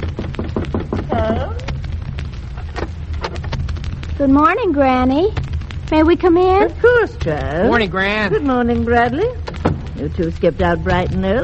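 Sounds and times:
knocking on a door: 0.1s - 1.4s
speech: 4.2s - 11.4s.

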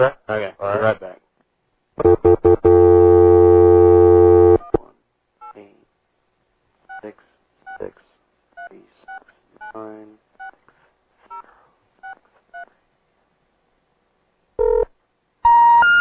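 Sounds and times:
speech: 0.0s - 1.1s
steady phone tone: 2.0s - 4.7s, 14.6s - 14.9s, 15.5s - 15.9s.

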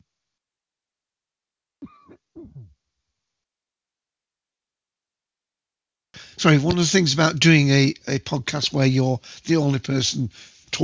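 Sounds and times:
person clearing throat: 1.8s - 2.8s
speech: 6.4s - 10.8s.

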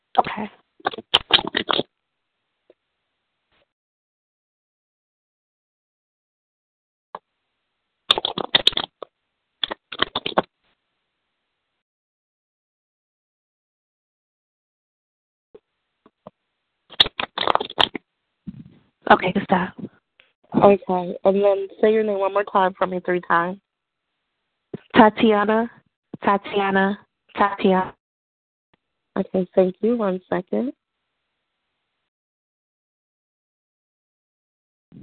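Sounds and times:
speech: 0.4s - 0.6s, 19.1s - 19.9s, 20.5s - 23.6s, 25.0s - 28.0s, 29.2s - 30.8s
riffle-shuffling of tarot cards: 0.9s - 1.8s, 8.1s - 9.0s, 9.6s - 10.5s, 16.9s - 18.0s.

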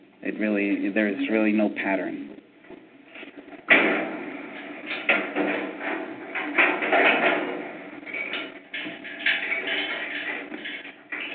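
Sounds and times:
steady hum of room noise: 0.0s - 11.3s
speech: 0.2s - 2.4s
knocks and bumps: 2.6s - 11.3s
office door shutting with a firm thud: 3.6s - 11.3s.

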